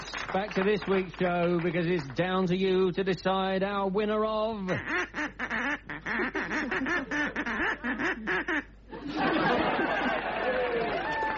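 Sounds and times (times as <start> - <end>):
speech: 0.3 - 7.0
person imitating a duck with nasal quacks: 4.7 - 8.7
audience laughing: 6.1 - 11.3.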